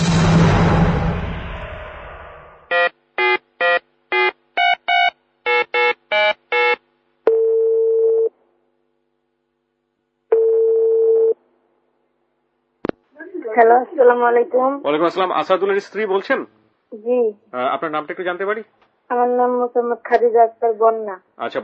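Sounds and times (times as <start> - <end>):
burst of noise: 0.0 - 2.7
telephone ringing tones as a call is placed: 2.7 - 8.3, 10.3 - 11.4
telephone keypad dialing beeps: 2.8 - 6.8
speech: 13.6 - 21.6.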